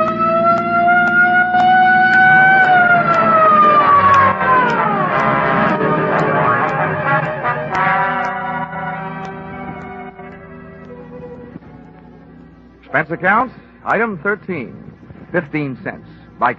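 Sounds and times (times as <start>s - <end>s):
vehicle racing along: 0.0s - 11.2s
police patrol car siren wailing during chase: 0.0s - 12.2s
speech: 13.1s - 16.5s.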